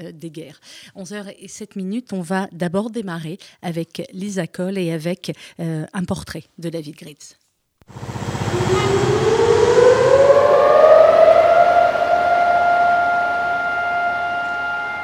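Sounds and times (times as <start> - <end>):
speech: 0.0 - 9.3
civil defense siren sounding for a memorial: 7.9 - 15.0.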